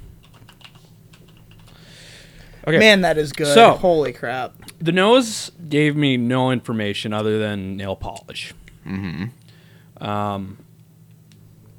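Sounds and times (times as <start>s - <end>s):
low steady hum: 0.0s - 11.7s
typing on a computer keyboard: 0.2s - 1.8s
speech: 2.6s - 9.4s, 10.0s - 10.7s.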